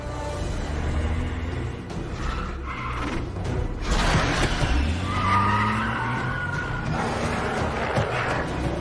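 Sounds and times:
speeding car engine roaring: 0.0s - 8.7s
speeding car tires squealing and skidding: 2.0s - 8.7s.

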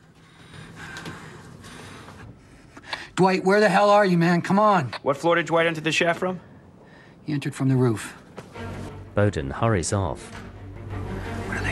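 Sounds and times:
young man breathing heavily in a lift: 0.1s - 3.2s
speech: 3.2s - 6.5s, 7.3s - 8.2s, 9.2s - 10.4s.

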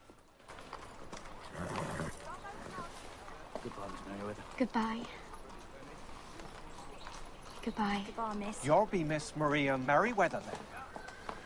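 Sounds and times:
horse hooves clip-clopping drawing a carriage outside a country house: 0.0s - 11.4s
speech: 3.6s - 5.3s, 7.6s - 10.7s.

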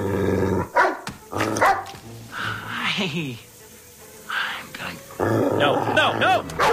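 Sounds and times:
dog growling roughly: 0.0s - 1.7s, 5.2s - 6.4s
dog barking in short excited bursts: 0.7s - 1.0s, 1.6s - 2.0s, 6.6s - 6.7s
speech: 3.0s - 3.5s, 5.2s - 6.7s.

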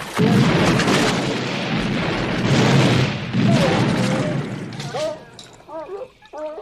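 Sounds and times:
shotgun fire at a pond at night: 0.2s - 5.0s.

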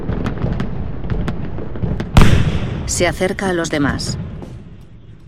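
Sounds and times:
pistol gunshot: 0.2s - 2.9s
speech: 2.9s - 4.2s.

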